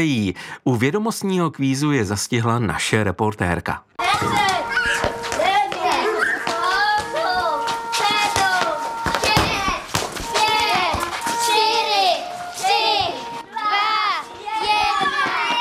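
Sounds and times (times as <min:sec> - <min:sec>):
speech: 0:00.0 - 0:05.1
children's running footsteps and taps: 0:04.0 - 0:13.4, 0:14.2 - 0:15.6
children chattering and calling out at a hunting lodge in Krhova Czech Republic: 0:04.0 - 0:15.6.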